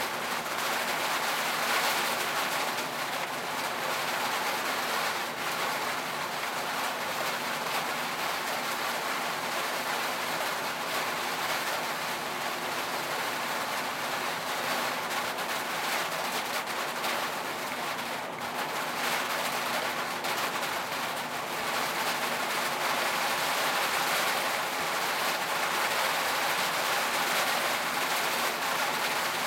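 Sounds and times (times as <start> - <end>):
heavy rain on a metal roof: 0.0 - 29.4.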